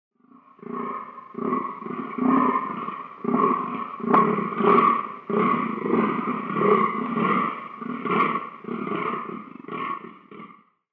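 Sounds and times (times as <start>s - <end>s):
fallow deer stag rutting calls: 0.5s - 10.6s.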